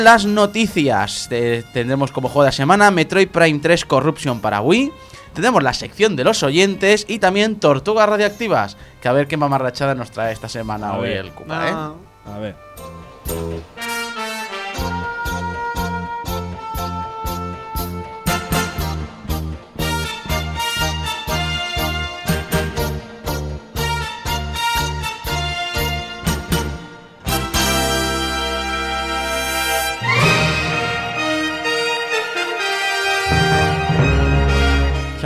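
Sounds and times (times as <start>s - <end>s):
speech: 0.0s - 13.9s
orchestral end-credits theme music from a video game: 10.6s - 35.2s.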